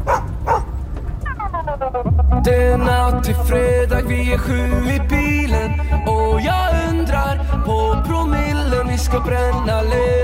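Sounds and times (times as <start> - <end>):
dog barking and yipping: 0.0 - 0.8
continuous low rumble: 0.0 - 10.2
speech: 2.5 - 10.2.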